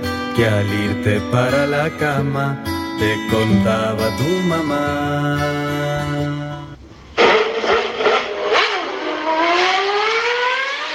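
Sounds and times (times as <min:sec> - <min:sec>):
speech: 0:00.4 - 0:06.7
car engine revving: 0:06.8 - 0:10.9.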